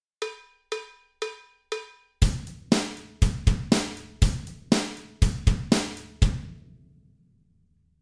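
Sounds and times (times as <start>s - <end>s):
hi-hat: 2.2s - 6.4s
drum: 2.2s - 7.1s.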